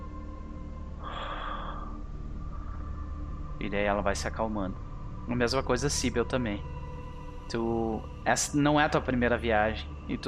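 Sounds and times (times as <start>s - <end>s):
steady low hum: 0.0s - 10.2s
breathy inhale and exhale: 1.0s - 3.2s
speech: 3.6s - 6.7s, 7.5s - 10.2s.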